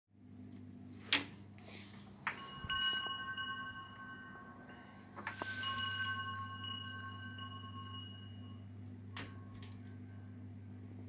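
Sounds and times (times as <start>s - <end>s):
wind chime: 2.2s - 10.4s.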